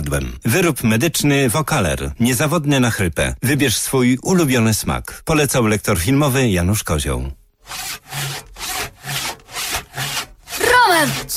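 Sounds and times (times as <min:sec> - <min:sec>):
speech: 0:00.1 - 0:08.5, 0:11.0 - 0:11.3
handsaw sawing lower branches of a Christmas tree: 0:07.6 - 0:11.3.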